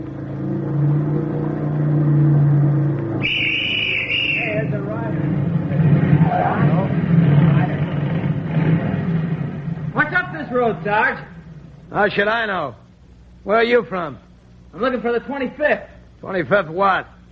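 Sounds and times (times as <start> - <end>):
motorcycle engine droning on a road: 0.0 - 12.6
speech: 11.9 - 12.8, 13.4 - 17.1.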